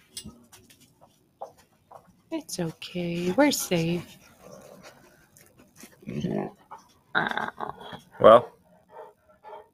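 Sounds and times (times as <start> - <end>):
murky noise: 1.4 - 9.6
speech: 2.3 - 4.2, 8.2 - 8.5
female dog growling: 3.5 - 5.2, 6.0 - 9.7.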